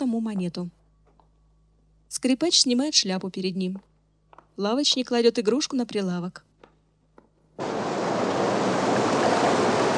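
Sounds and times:
speech: 0.2s - 0.8s, 2.1s - 3.9s, 4.6s - 6.5s
rough choppy sea surging beside a pier: 7.6s - 9.9s.

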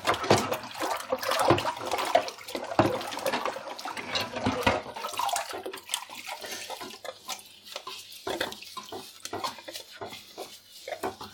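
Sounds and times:
dishwater sloshing and splashing while washing dishes by hand: 0.0s - 11.3s
dishes, ladle and large pot lid clinking and knocking: 4.0s - 4.9s.

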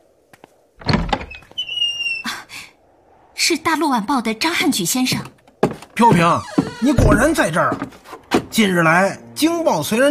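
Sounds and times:
door rattle: 0.8s - 1.6s, 6.5s - 7.5s
door being opened: 0.8s - 2.2s, 5.2s - 7.5s
door squeak: 0.8s - 2.3s, 6.3s - 7.5s
speech: 3.5s - 5.4s, 6.0s - 8.0s, 8.6s - 10.0s.

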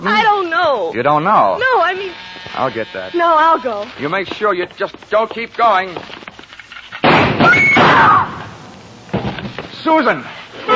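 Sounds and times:
speech: 0.9s - 6.2s, 7.4s - 8.4s, 9.8s - 10.7s
gunfire ripping through a door as a radio drama sound effect: 7.0s - 8.3s
gun bang: 7.0s - 8.5s.

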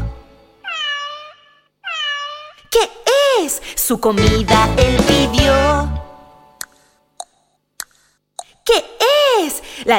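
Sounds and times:
cat meowing: 0.6s - 2.7s
speech: 2.8s - 6.0s.

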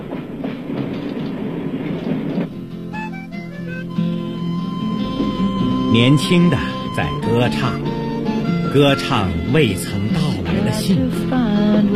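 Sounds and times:
international passenger train wheels rattling near Basel: 0.0s - 2.6s
international passenger train rumbling along near Basel: 0.0s - 11.9s
speech: 5.9s - 7.9s, 8.7s - 10.0s, 10.7s - 11.9s.

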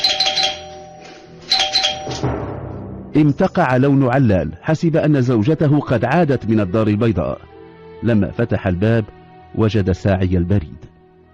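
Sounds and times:
doorbell ringing: 0.0s - 2.3s
speech: 3.2s - 10.9s.

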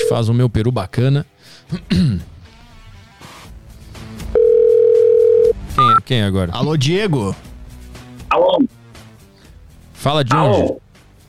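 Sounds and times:
speech: 0.1s - 2.3s, 5.8s - 7.5s, 10.0s - 10.8s
person clearing throat: 1.7s - 2.3s
telephone dial tone as a host rings a listener: 4.4s - 5.9s.

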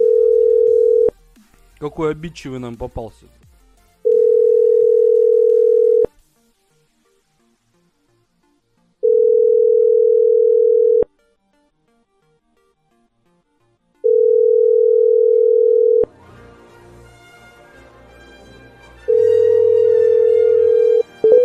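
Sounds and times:
telephone line ring tones while a call is placed: 0.0s - 1.1s, 4.0s - 6.1s, 9.0s - 11.1s, 14.0s - 16.1s, 19.1s - 21.4s
speech: 1.8s - 3.4s.

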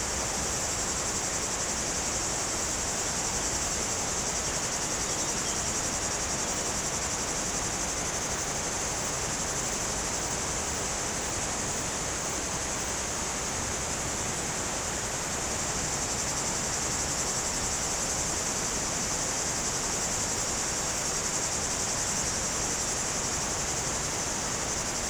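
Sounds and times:
cicada chorus droning in trees on a hot day: 0.0s - 25.0s.

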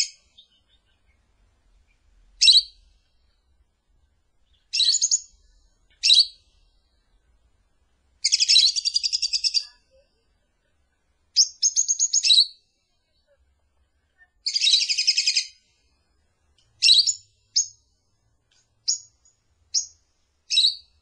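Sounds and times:
lovebird giving shrill high chirps and trills as a lure call: 0.0s - 3.4s, 4.4s - 7.4s, 8.2s - 10.1s, 11.3s - 13.2s, 14.4s - 15.8s, 16.8s - 18.0s, 18.8s - 21.0s.

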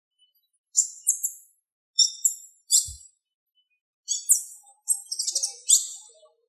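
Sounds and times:
bird singing high buzzy chirps and trills: 0.3s - 3.2s, 4.1s - 6.3s.

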